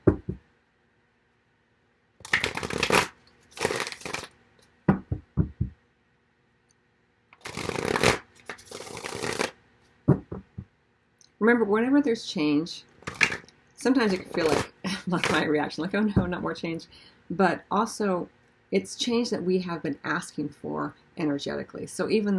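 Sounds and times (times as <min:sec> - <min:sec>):
playing cards being shuffled in rapid riffling: 0:02.2 - 0:04.3, 0:07.4 - 0:09.6, 0:13.0 - 0:13.4
short sharp taps and knocks of playing cards: 0:10.1 - 0:10.7
speech: 0:11.4 - 0:12.9, 0:13.8 - 0:22.3.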